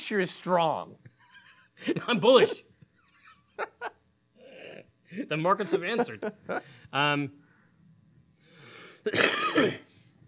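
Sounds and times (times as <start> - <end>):
speech: 0.0 - 1.1, 1.8 - 2.7, 5.1 - 7.4, 9.0 - 9.9
short voiced grunt: 4.4 - 4.9
loud raspy throaty cough: 9.0 - 10.0.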